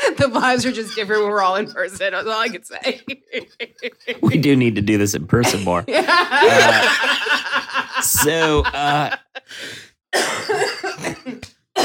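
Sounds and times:
loud laughter: 0.0 - 4.6, 5.4 - 9.7
speech: 0.1 - 11.8
person gasping between coughs: 9.4 - 10.0
coughing fit after laughing too hard: 10.2 - 11.8.

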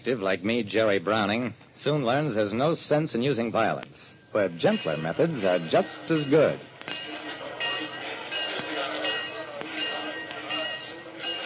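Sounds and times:
speech: 0.0 - 7.0
murmur of voices: 3.5 - 11.4
passenger train rumbling as it pulls out of a station: 4.5 - 11.4.

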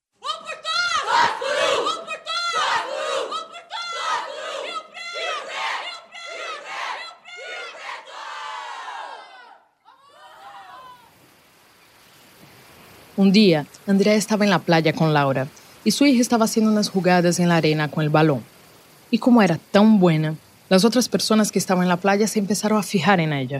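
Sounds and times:
loud stadium crowd chanting at a football match: 0.2 - 11.1
speech: 13.2 - 18.5, 19.1 - 23.5.

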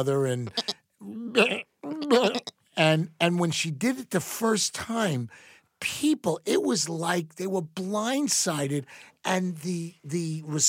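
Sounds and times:
speech: 0.0 - 0.7, 1.3 - 10.6
person imitating sheep with nasal baa bleats: 0.5 - 2.5.

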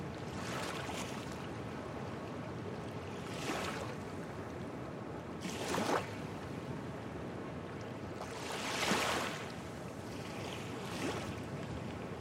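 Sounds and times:
low rumble of wind and swell: 0.0 - 12.2
water lapping against moored boats in a fishing port in Portugal: 0.2 - 1.8, 3.1 - 4.3, 5.4 - 6.5, 7.8 - 12.2.

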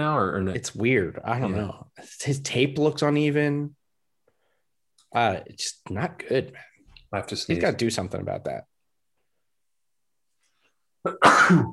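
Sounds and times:
speech: 0.0 - 3.8, 5.1 - 8.7, 11.0 - 11.7
person sneezing: 11.1 - 11.7.

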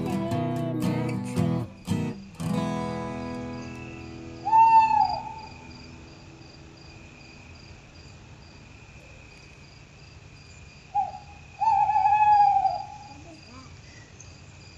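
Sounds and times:
crickets chirring: 0.0 - 14.7
owl hooting: 3.8 - 5.8, 11.0 - 14.1.

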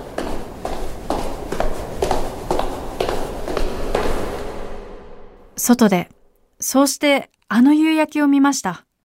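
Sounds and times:
footsteps running down a station stairway: 0.0 - 4.5
speech: 5.6 - 8.9.

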